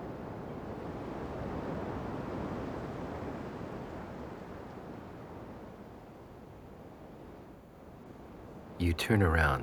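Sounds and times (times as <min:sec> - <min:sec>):
ocean waves breaking on shore: 0:00.1 - 0:07.4
speech: 0:08.8 - 0:09.6.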